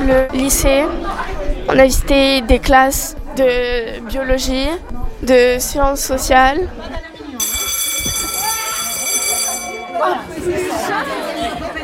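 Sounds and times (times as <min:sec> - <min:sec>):
speech: 0:00.0 - 0:07.1
crowd of chattering voices in a high school hallway: 0:00.0 - 0:11.8
school bell ringing in a high school hallway: 0:07.4 - 0:11.0.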